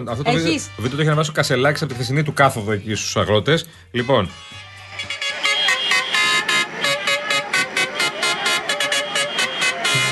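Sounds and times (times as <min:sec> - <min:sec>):
speech: 0:00.0 - 0:05.1
horns of two tractors honking at a farmers' rally: 0:00.3 - 0:01.3, 0:04.0 - 0:10.1.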